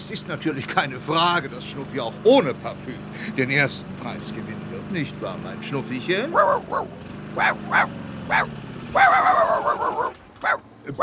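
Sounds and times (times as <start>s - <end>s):
speech: 0.1s - 11.0s
small dog at a dog show yipping, barking and yelping: 6.3s - 11.0s.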